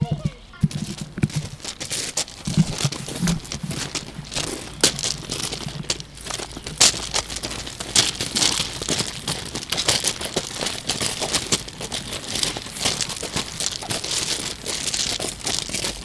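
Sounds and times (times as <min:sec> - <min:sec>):
footsteps on a gravel path: 0:00.0 - 0:16.0.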